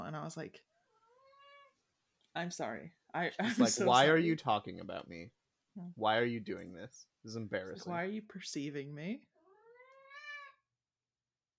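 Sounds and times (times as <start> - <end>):
speech: 0.1 - 0.7, 2.4 - 9.3
cat meowing plaintively: 0.9 - 1.8, 9.4 - 10.7.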